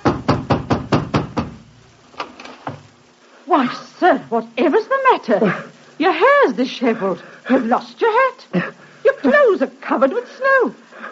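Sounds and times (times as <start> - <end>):
hammering knocks on a wooden door: 0.0 - 1.7
speech: 3.6 - 10.8.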